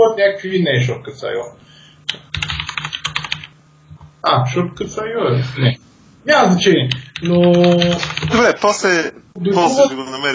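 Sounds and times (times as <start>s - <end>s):
speech: 0.0s - 2.5s, 4.2s - 10.3s
low steady hum: 0.0s - 10.3s
rapid computer keyboard typing: 2.1s - 3.5s, 6.9s - 8.5s.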